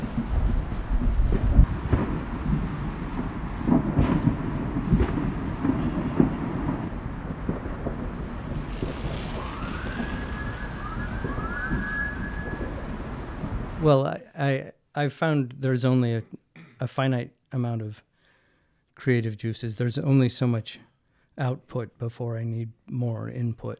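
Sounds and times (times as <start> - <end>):
distant fireworks booms: 0.0 - 14.0
rising fireworks whistles: 9.0 - 13.8
speech: 13.9 - 18.1, 19.0 - 23.7.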